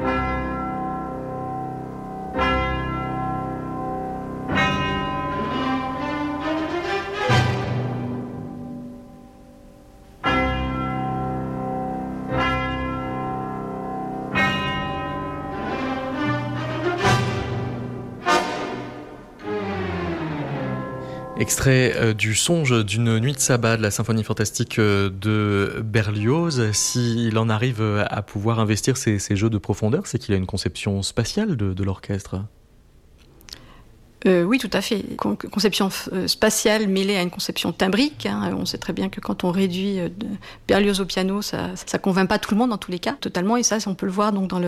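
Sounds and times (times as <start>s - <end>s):
deep orchestral bells tolling on stage and offstage: 0.0s - 9.5s, 10.2s - 24.0s
sustained orchestral backdrop: 1.9s - 24.1s
speech: 21.4s - 32.6s, 34.2s - 44.6s.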